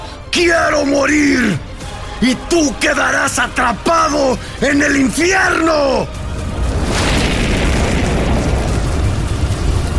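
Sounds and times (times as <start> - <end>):
speech: 0.4 - 6.2
wall of fire bursting up and engulfing a body: 5.8 - 9.9.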